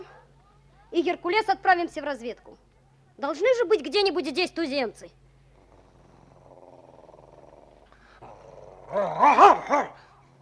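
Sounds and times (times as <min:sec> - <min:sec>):
speech: 0:00.9 - 0:05.2, 0:08.9 - 0:10.0
dog growling and barking: 0:05.6 - 0:10.1.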